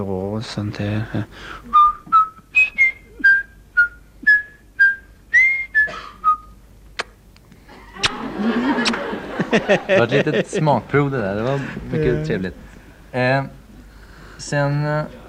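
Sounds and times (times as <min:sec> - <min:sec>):
speech: 0:00.0 - 0:01.8, 0:09.6 - 0:13.6, 0:14.4 - 0:15.2
person whistling a short lilting melody: 0:01.7 - 0:06.6
laughter: 0:07.7 - 0:11.9.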